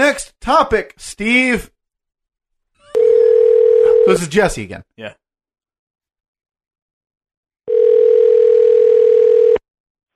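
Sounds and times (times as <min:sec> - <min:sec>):
speech: 0:00.1 - 0:01.7, 0:04.1 - 0:05.2
electronic ring tone of an outgoing phone call: 0:02.9 - 0:04.2, 0:07.7 - 0:09.6.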